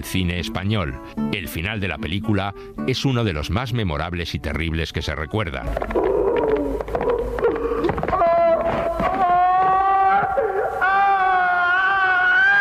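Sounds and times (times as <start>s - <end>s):
speech: 0.0s - 6.2s
person screaming in anguish in a film scene: 5.9s - 12.5s
person sobbing in a film scene: 6.0s - 12.5s.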